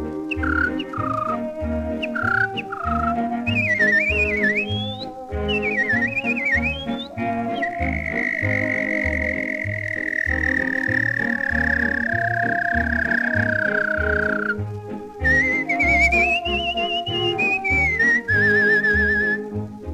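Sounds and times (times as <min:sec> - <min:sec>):
person whistling an imitation of an American thrush song: 0:00.0 - 0:19.9
steady instrumental accompaniment: 0:00.0 - 0:19.9.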